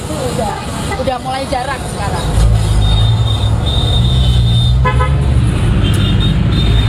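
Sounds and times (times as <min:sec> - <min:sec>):
city bus engine rumbling: 0:00.0 - 0:06.8
street noise: 0:00.0 - 0:06.8
speech: 0:00.2 - 0:02.5
city bus horn: 0:02.8 - 0:05.2, 0:05.8 - 0:06.8.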